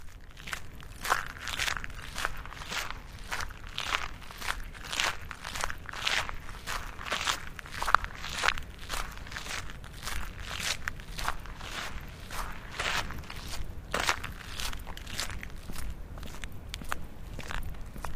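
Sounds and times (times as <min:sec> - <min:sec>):
footsteps walking on gravel: 0:00.0 - 0:18.1.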